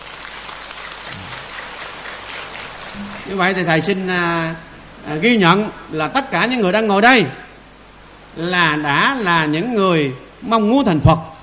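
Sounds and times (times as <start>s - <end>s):
audience clapping at a Buddhist teaching: 0.0s - 3.9s
speech: 3.0s - 7.4s, 8.4s - 11.4s.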